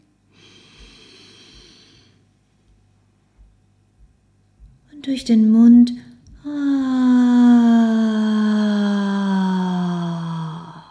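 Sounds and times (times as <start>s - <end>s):
hiss: 0.0s - 10.8s
deep inhale through the nose: 0.3s - 2.3s
speech: 5.0s - 6.0s.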